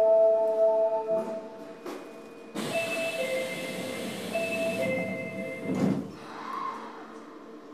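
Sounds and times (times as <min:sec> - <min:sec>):
subway platform warning tones at Senri-Chuo Station in Japan: 0:00.0 - 0:05.9
rumble of the subway train pulling away: 0:01.0 - 0:07.7
Osaka Municipal Subway train doors sliding shut with a thump: 0:01.2 - 0:06.3.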